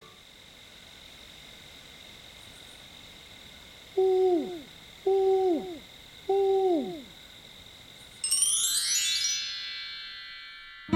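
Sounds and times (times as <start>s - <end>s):
baby snowy owl: 4.0s - 7.1s.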